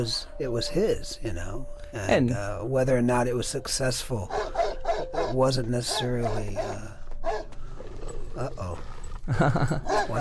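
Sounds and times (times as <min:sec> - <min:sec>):
speech: 0:00.0 - 0:07.0, 0:08.4 - 0:10.1
dog barking aggressively: 0:04.3 - 0:07.5, 0:09.8 - 0:10.1
laughter: 0:09.3 - 0:10.1.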